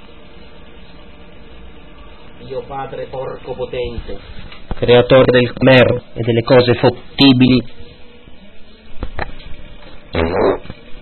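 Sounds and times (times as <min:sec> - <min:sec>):
speech: 0:02.4 - 0:07.9
short buzzy fart: 0:10.1 - 0:10.9.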